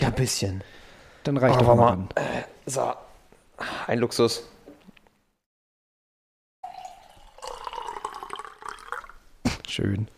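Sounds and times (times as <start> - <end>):
speech: 0.2 - 4.6, 9.8 - 10.1
water pouring from a Brita filter jug into a glass: 6.6 - 9.2.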